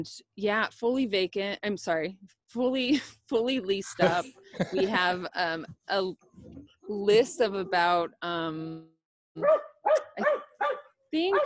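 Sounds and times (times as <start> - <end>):
speech: 0.0 - 10.4, 11.1 - 11.4
pet dog barking in excitement at squirrels: 9.4 - 11.4.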